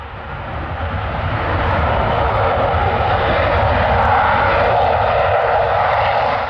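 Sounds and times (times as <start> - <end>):
jumbo jet engines roaring on takeoff: 0.0 - 6.4.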